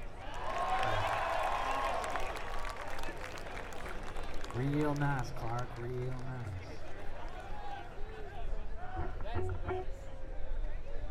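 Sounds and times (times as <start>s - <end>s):
scattered cheers and crowd voices: 0.0s - 4.8s, 6.6s - 10.4s
audience applause: 0.0s - 6.8s
speech: 4.6s - 6.8s.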